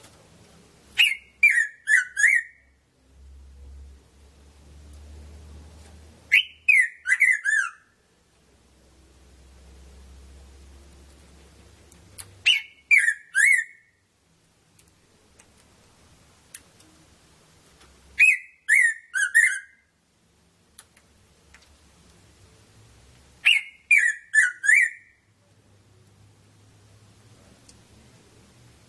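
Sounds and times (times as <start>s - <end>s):
red-throated parrotfinch Erythrura psittacea calling: 0.9s - 2.7s, 6.3s - 8.0s, 12.4s - 14.0s, 18.2s - 19.9s, 23.4s - 25.2s.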